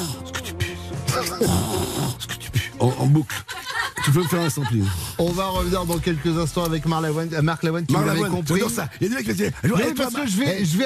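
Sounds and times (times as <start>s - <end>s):
person imitating snoring with their voice: 1.2s - 2.4s
speech: 1.2s - 10.8s
laughter: 3.2s - 6.7s.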